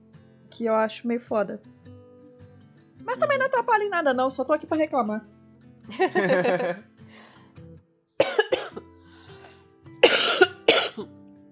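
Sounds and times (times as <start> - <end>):
speech: 0.6 - 1.8, 3.1 - 6.9
laughter: 5.9 - 6.8
harsh hacking coughing: 8.2 - 8.9, 10.0 - 11.1.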